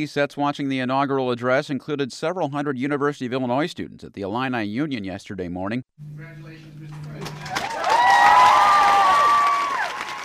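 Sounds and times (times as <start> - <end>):
speech: 0.0 - 8.4
large indoor crowd applauding and cheering: 7.2 - 10.2
high voices whooping: 7.4 - 10.2.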